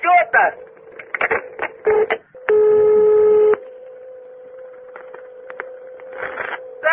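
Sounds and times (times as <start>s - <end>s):
steady low electronic hum: 0.0s - 6.9s
telephone keypad tone as a number is dialed: 1.8s - 6.8s.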